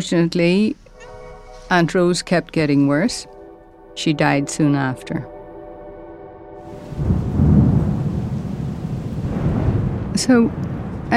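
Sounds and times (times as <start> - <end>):
speech: 0.0 - 0.8, 1.7 - 3.4, 4.0 - 5.3, 10.2 - 11.1
steady heavy rain: 6.6 - 11.1
deep rolling thunder: 6.7 - 11.1.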